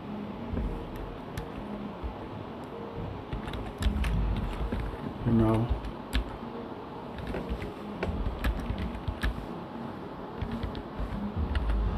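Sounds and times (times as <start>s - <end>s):
steady hiss: 0.0s - 11.9s
typing on a computer keyboard: 3.3s - 6.4s, 7.2s - 9.4s, 10.4s - 11.9s
speech: 5.3s - 5.8s.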